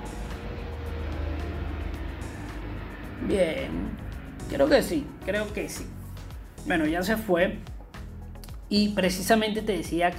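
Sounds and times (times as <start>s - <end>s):
helicopter passing overhead with engine rumble and rotor chop: 0.0s - 6.6s
speech: 3.2s - 6.0s, 6.6s - 7.7s, 8.7s - 10.1s.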